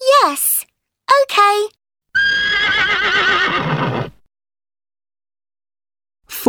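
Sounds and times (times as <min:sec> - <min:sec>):
speech: 0:01.3 - 0:01.8
horse whinnying with long wavering neigh: 0:02.2 - 0:04.2.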